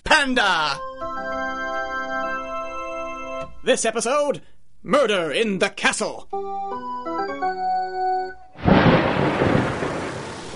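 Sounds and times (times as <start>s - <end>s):
speech: 0.2s - 0.9s, 3.6s - 7.8s
tonal musical notes: 0.8s - 3.6s, 6.3s - 8.6s
loud roar of heavy storm rain: 8.6s - 10.5s
rumbling thunder: 8.6s - 10.5s.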